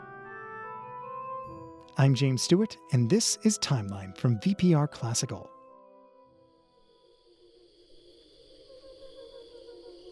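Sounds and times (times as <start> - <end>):
speech: 2.0 - 5.6
crickets chirping: 2.9 - 10.1.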